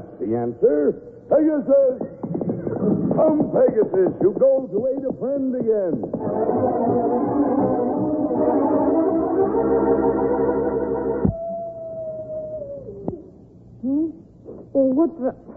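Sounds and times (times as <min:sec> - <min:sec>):
speech: 0:00.2 - 0:08.8, 0:09.4 - 0:11.1, 0:14.8 - 0:15.5
several wolves howling together: 0:06.2 - 0:13.3.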